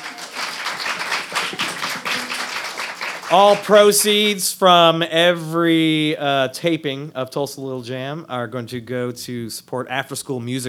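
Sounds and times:
audience applause: 0.0 - 3.9
speech: 3.3 - 10.6.

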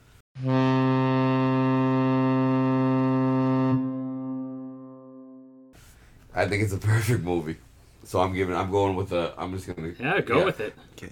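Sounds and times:
foghorn blast: 0.4 - 5.8
speech: 6.4 - 11.0.

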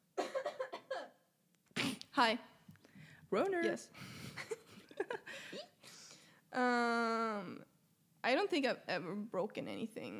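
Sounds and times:
person coughing: 0.2 - 1.2
speech: 2.2 - 2.5, 3.3 - 4.2, 6.6 - 10.1.

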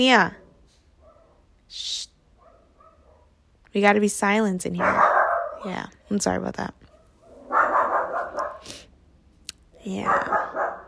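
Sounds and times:
speech: 0.0 - 0.4, 1.7 - 2.0, 3.7 - 6.8, 9.8 - 10.5
dog barking: 1.0 - 1.5, 2.4 - 3.4, 4.8 - 5.7, 6.9 - 8.7, 10.0 - 10.8.

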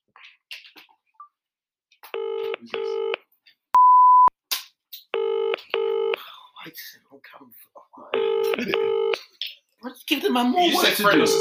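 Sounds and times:
buzzy phone ringing bursts: 2.2 - 3.2, 5.2 - 6.2, 8.2 - 9.2, 10.8 - 11.3
quick keypad-like phone blips: 3.8 - 4.3
single steady phone beep: 3.8 - 4.3
speech: 7.1 - 9.2, 10.1 - 11.3.

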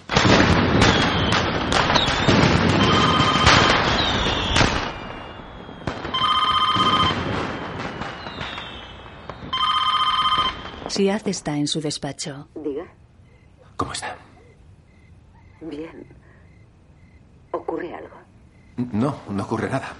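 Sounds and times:
fireworks bursting with crackling and whistling at a party: 0.0 - 11.4
telephone ringing: 2.8 - 3.6, 6.1 - 7.2, 9.5 - 10.6
speech: 11.0 - 13.0, 13.8 - 14.3, 15.6 - 16.2, 17.6 - 18.2, 18.8 - 19.9.

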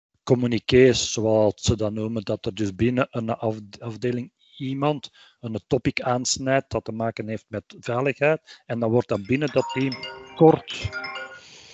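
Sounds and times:
speech: 0.3 - 11.2
telephone ringing with bright electronic tones: 9.2 - 11.6.

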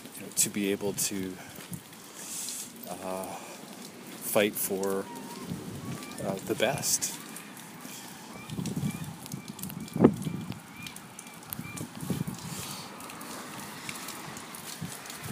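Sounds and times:
speech: 0.4 - 1.7, 2.9 - 3.5, 4.4 - 5.2, 6.2 - 7.2
seagulls calling beside the Pacific Ocean: 4.1 - 14.4.

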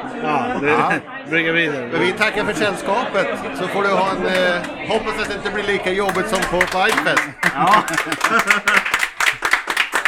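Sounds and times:
speech: 0.2 - 9.0
laughter: 2.0 - 10.0
applause: 6.1 - 10.0.

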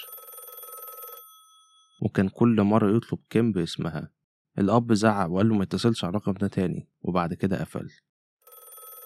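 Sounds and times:
old-fashioned landline telephone bell ringing: 0.0 - 2.0, 8.4 - 9.0
speech: 2.0 - 8.1.

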